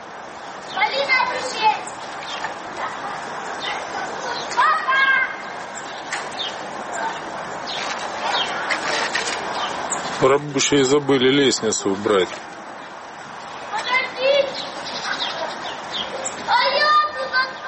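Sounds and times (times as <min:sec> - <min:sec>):
steady hiss: 0:00.0 - 0:17.6
fainter chatter: 0:00.1 - 0:17.6
children calling and shouting while playing in a construction pit: 0:00.7 - 0:09.2, 0:13.6 - 0:17.6
speech: 0:10.2 - 0:12.6.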